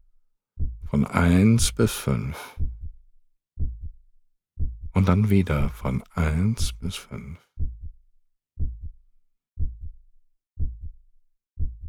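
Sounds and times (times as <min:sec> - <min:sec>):
heartbeat: 0:00.6 - 0:01.0, 0:02.6 - 0:03.0, 0:03.6 - 0:04.0, 0:04.6 - 0:05.9, 0:06.6 - 0:06.9, 0:07.6 - 0:08.0, 0:08.6 - 0:09.0, 0:09.6 - 0:10.0, 0:10.6 - 0:11.0, 0:11.6 - 0:11.8
speech: 0:00.9 - 0:02.8, 0:05.0 - 0:07.5.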